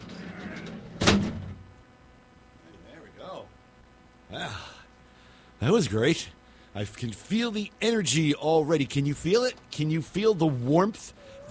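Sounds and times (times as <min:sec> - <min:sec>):
big heavy door slamming shut: 0:00.4 - 0:01.6
speech: 0:04.3 - 0:04.7, 0:05.6 - 0:11.5.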